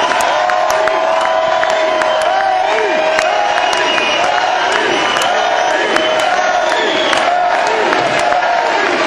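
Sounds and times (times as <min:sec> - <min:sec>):
large concert crowd shouting: 0:00.0 - 0:09.0
scattered clapping at end of concert: 0:00.0 - 0:09.0
concert crowd whistles: 0:01.2 - 0:07.4.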